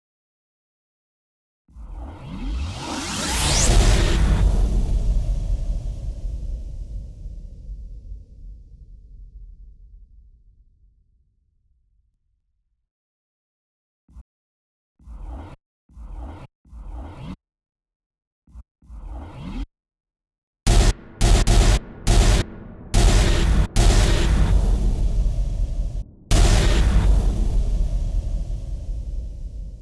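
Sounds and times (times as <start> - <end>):
rise and hit effect: 2.3 - 5.8, 20.7 - 29.8.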